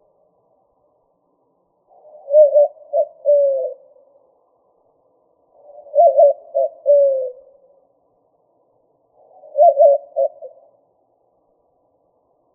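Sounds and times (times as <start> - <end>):
white-winged dove cooing: 1.9 - 4.1, 5.5 - 7.7, 9.2 - 10.8.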